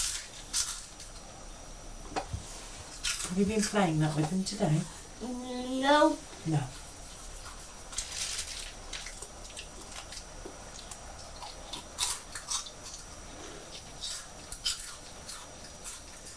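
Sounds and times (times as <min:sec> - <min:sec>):
person crunching and chewing Quavers crisps: 0:00.0 - 0:01.1, 0:07.4 - 0:13.1, 0:13.8 - 0:16.3
speech: 0:03.4 - 0:06.8.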